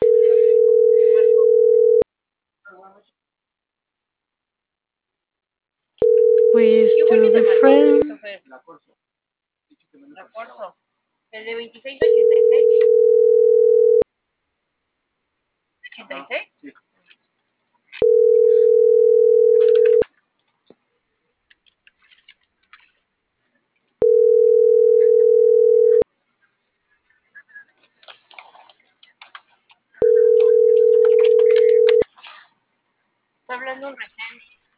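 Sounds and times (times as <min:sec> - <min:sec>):
telephone line tone while a number is dialed: 0:00.0 - 0:02.0, 0:06.0 - 0:08.0, 0:12.0 - 0:14.0, 0:18.0 - 0:20.0, 0:24.0 - 0:26.0, 0:30.0 - 0:32.0
speech: 0:06.6 - 0:09.0, 0:09.7 - 0:14.0, 0:16.0 - 0:16.8, 0:33.5 - 0:34.5.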